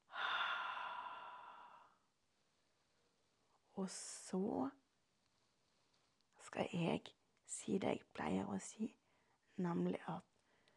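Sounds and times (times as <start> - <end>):
deep breath in through the nose, out through the mouth during a relaxation exercise: 0.0 - 2.1
speech: 3.8 - 4.8, 6.5 - 9.0, 9.6 - 10.3.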